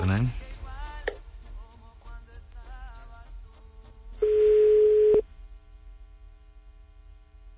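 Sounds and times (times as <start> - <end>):
speech: 0.1 - 0.4
loud steady telephone line tone before voicemail: 4.2 - 5.2
recorded Spanish voicemail prompt: 4.2 - 5.2.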